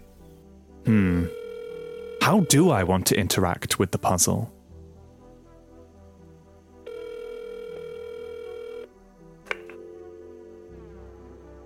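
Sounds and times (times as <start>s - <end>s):
speech: 0.8s - 1.4s, 2.3s - 4.6s
steady electronic phone tone: 0.9s - 2.6s, 6.9s - 8.9s.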